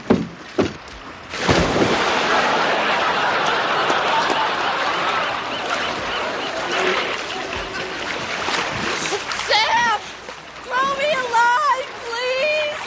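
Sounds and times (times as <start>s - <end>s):
churning, sloshing ocean water: 0.0s - 12.8s
person splashing into ocean water: 1.3s - 3.0s, 5.7s - 10.4s
laughter: 1.9s - 8.3s
voices calling out: 2.1s - 12.8s.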